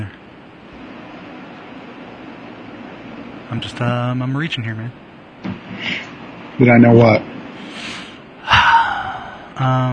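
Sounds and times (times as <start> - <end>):
speech: 3.5 - 5.0, 6.6 - 7.7, 9.6 - 9.9
heavy breathing right against the microphone: 7.5 - 9.6.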